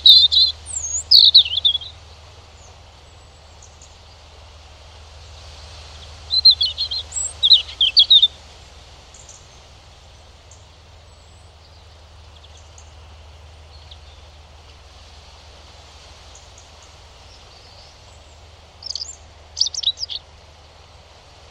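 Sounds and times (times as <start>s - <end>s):
European robin singing: 0.0s - 4.5s, 5.9s - 14.5s, 16.3s - 20.3s.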